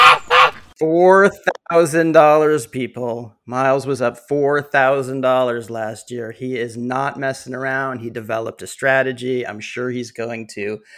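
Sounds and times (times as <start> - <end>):
geese honking: 0.0 - 0.6
speech: 0.8 - 10.9.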